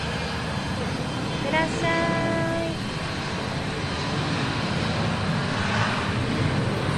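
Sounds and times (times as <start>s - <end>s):
airplane engine roaring as plane departs for Kumamoto: 0.0s - 6.9s.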